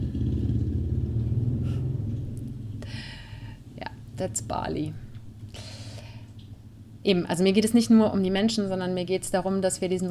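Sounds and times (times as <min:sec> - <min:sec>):
heavy motorcycle driving past: 0:00.0 - 0:05.0
speech: 0:04.2 - 0:05.1, 0:07.0 - 0:10.0.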